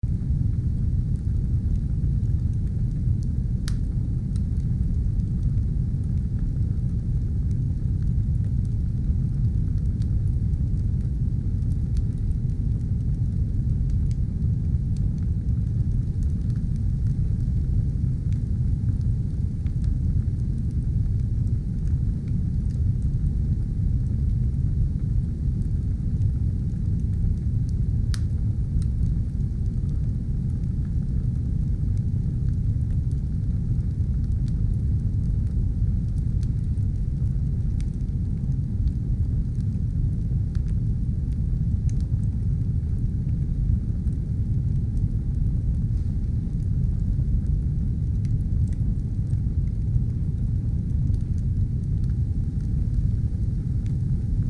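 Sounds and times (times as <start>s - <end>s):
stove fire white noise: 0.1s - 54.4s.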